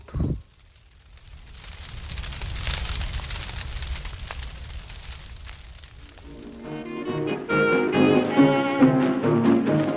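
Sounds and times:
São João wood bonfire crackling and popping: 0.0 - 9.9.

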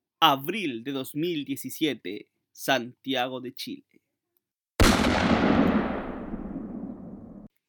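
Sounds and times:
speech: 0.2 - 4.0
single loud gunshot echoing through a room: 4.8 - 7.5.

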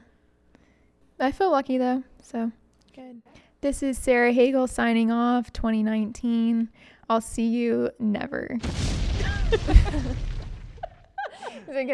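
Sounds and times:
speech: 1.2 - 10.3, 11.7 - 11.9
faint crackling debris: 8.6 - 11.2
small explosion sound effect: 8.6 - 11.2.

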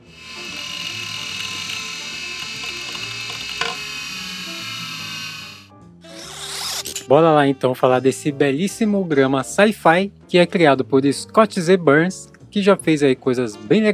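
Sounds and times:
old Winchester hard disk drive spinning: 0.0 - 5.7
speech: 7.1 - 13.9.

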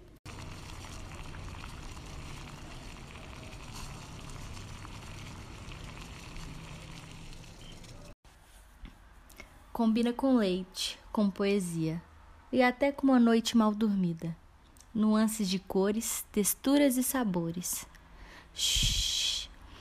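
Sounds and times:
water boiling before making coffee: 0.2 - 8.2
speech: 9.8 - 17.9, 18.6 - 19.1.

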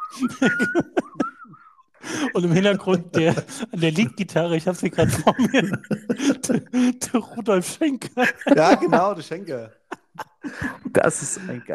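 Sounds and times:
crowd whistling at a rock concert: 0.0 - 2.7
speech: 0.1 - 1.0, 2.1 - 11.7
laughter: 0.1 - 1.4, 2.0 - 11.6.

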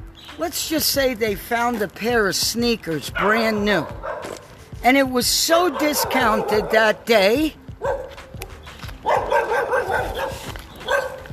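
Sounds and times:
soft footsteps of people walking along the street: 0.0 - 11.3
speech: 0.3 - 8.0
dog barking on the street: 3.2 - 4.4, 5.6 - 7.0, 7.8 - 8.2, 9.0 - 11.3.

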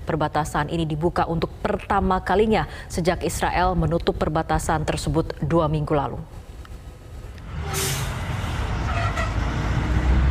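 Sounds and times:
speech: 0.1 - 6.4
road noise: 6.5 - 10.2
heavy aid trucks carrying humanitarian aid rumbling past: 7.4 - 10.2
air brake hiss of aid truck: 7.6 - 8.2.

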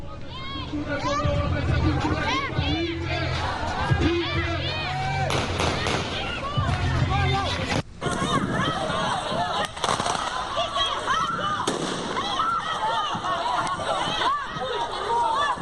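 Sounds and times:
dense chaotic crowd with many voices shouting and clamoring: 0.0 - 15.6
sharp bursts of gunfire: 5.3 - 6.3, 11.6 - 12.4
laughter: 12.6 - 15.6.

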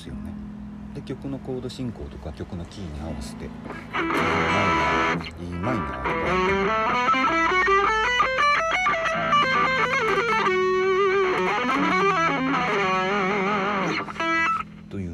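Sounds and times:
speech: 1.0 - 7.6
heavily distorted electric guitar climbing through a scale: 3.8 - 14.7.

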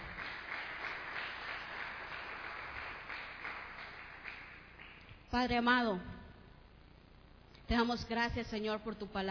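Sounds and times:
audience applauding at a church service: 0.0 - 5.1
speech: 5.3 - 6.2, 7.7 - 9.3.

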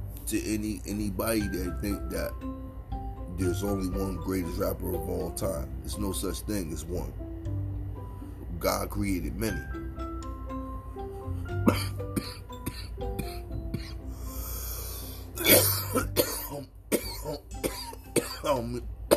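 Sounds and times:
faint steady tonal background: 0.0 - 19.1
speech: 0.3 - 2.8, 3.4 - 7.2, 8.6 - 9.8
person coughing: 11.6 - 14.0, 15.4 - 19.1
throat clearing: 11.6 - 14.0, 15.4 - 19.1.

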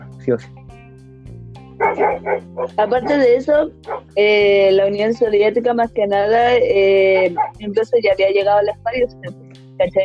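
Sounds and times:
speech: 0.2 - 0.6, 2.0 - 10.0
small dog barking: 1.8 - 4.1, 7.1 - 7.6.

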